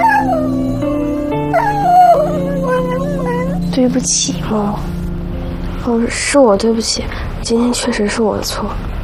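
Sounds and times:
stray dog whimpering and howling: 0:00.0 - 0:03.8
speech: 0:03.8 - 0:05.0, 0:05.8 - 0:08.9.

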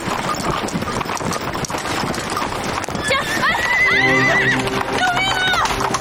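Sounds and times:
horse hooves clip-clopping under a rider: 0:00.0 - 0:05.9
horse giving loud shrill neighs: 0:03.0 - 0:05.9
people shouting over the commotion: 0:03.0 - 0:05.9.

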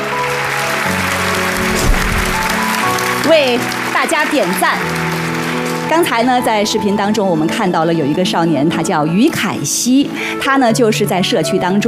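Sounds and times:
audience applause: 0:00.0 - 0:06.0
speech: 0:03.3 - 0:05.2, 0:05.9 - 0:11.8.

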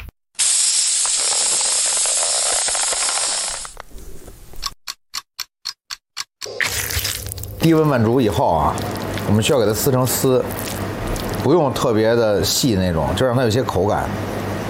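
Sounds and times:
vacuum sealer sucking air out of a spiced meat bag: 0:00.4 - 0:03.8
speech: 0:07.6 - 0:10.8, 0:11.4 - 0:14.5.

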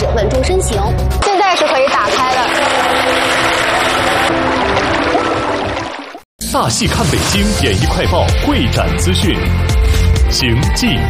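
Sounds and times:
speech: 0:00.4 - 0:01.8, 0:06.6 - 0:11.0
water rushing into a submerged car cabin during an escape demonstration: 0:01.6 - 0:08.4.

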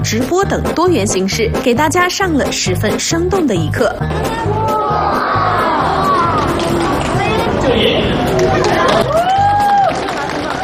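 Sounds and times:
speech: 0:00.0 - 0:05.3
crowd cheering and whooping: 0:04.0 - 0:10.6.

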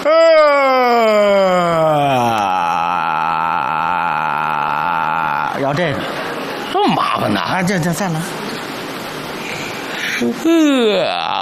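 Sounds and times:
speech: 0:00.0 - 0:01.4, 0:05.7 - 0:06.1, 0:07.2 - 0:08.5, 0:10.2 - 0:11.2
loud exaggerated human yawn with drawn-out tail: 0:00.0 - 0:05.6, 0:10.0 - 0:11.3.

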